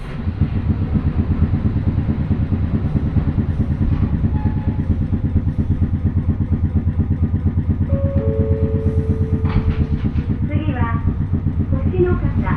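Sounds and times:
old electric train's nose-suspended traction motors growling: 0.1s - 12.5s
electric train squeals and clanks: 3.9s - 5.1s, 7.8s - 10.4s.

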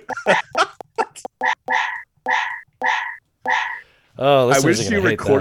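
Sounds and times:
speech: 0.2s - 0.5s, 4.2s - 5.3s
recording of a dog barking played from a soundboard: 1.7s - 3.8s.

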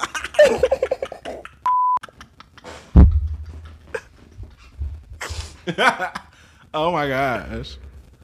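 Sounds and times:
laughter: 0.0s - 6.4s
mid-pitched censor beep tone: 1.7s - 2.0s
loud thump: 3.0s - 3.6s
speech: 5.7s - 6.2s, 6.8s - 7.8s.

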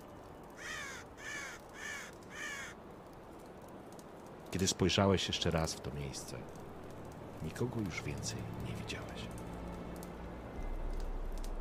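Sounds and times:
faint hissy outdoor background: 0.0s - 11.6s
ravens giving harsh raspy caws: 0.6s - 3.0s
speech: 4.5s - 6.7s, 7.4s - 9.5s.

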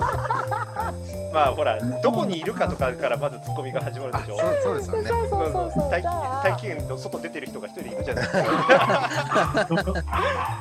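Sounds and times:
laughter: 0.0s - 1.1s, 4.2s - 5.6s, 8.1s - 10.6s
speech: 1.3s - 10.6s
dog barking: 8.9s - 10.6s.

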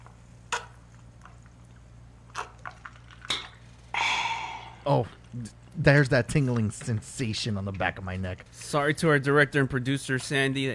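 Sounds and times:
low steady hum: 0.0s - 10.7s
person slurping orange seltzer soda from a cup: 4.0s - 5.3s
speech: 4.8s - 10.7s.

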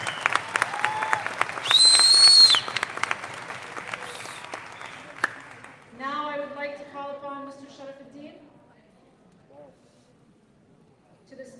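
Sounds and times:
crowd clapping: 0.0s - 6.0s.

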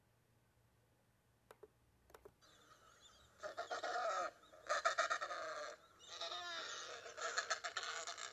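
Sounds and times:
Adélie Penguin braying calls: 2.6s - 8.3s.

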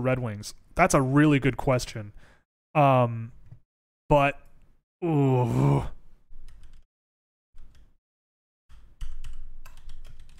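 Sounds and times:
speech: 0.0s - 3.4s, 4.1s - 6.0s
typing on a wireless computer keyboard: 6.5s - 6.8s, 8.7s - 10.3s.

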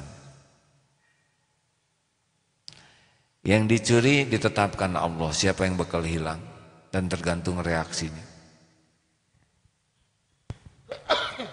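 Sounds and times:
speech: 3.4s - 8.3s
audience member sneezing at a gathering: 10.9s - 11.5s.

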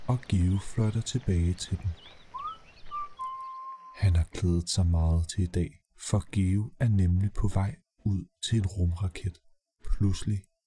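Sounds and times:
soft steady patter of light rain: 0.0s - 3.6s
birds singing in the rain in the evening: 0.0s - 4.2s
speech: 0.1s - 2.2s, 4.0s - 10.5s
faint higher bird chirps: 1.8s - 4.0s.

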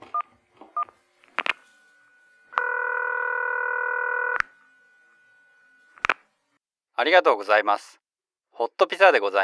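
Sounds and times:
phone clicks: 0.0s - 6.5s
electronic phone keypad beeps: 0.8s - 6.2s
speech: 7.0s - 8.0s, 8.6s - 9.4s.

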